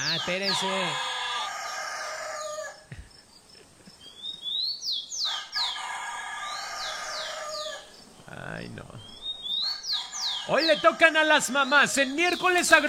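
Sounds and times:
rooster crowing: 0.0s - 2.9s, 5.2s - 7.9s, 9.6s - 11.5s
birds chirping and clucking: 0.0s - 12.8s
speech: 0.2s - 1.1s, 8.6s - 9.2s, 10.5s - 12.8s.

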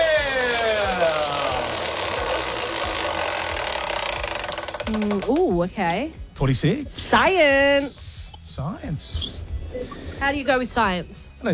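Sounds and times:
prize wheel whirring hum: 0.0s - 5.4s
speech: 5.0s - 11.5s.

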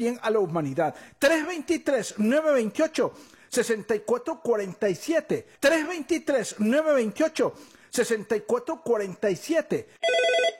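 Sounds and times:
speech: 0.0s - 10.5s
telephone ringing with an incoming call: 10.0s - 10.5s.

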